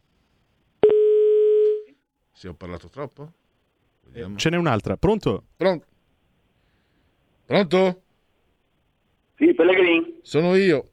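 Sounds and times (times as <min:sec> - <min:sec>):
telephone call tone on the line: 0:00.8 - 0:02.0
speech: 0:02.4 - 0:03.4, 0:04.0 - 0:05.9, 0:07.5 - 0:08.0, 0:09.4 - 0:10.9.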